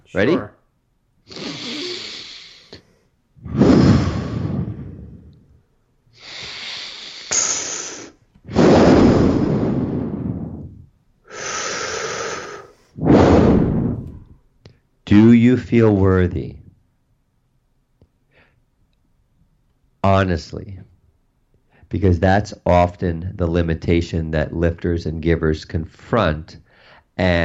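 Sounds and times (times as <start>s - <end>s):
speech: 0.1s - 0.6s, 15.2s - 16.6s, 20.0s - 20.9s, 21.9s - 26.6s, 27.2s - 27.4s
deep breaths: 1.3s - 14.8s, 18.2s - 18.8s, 26.6s - 27.2s.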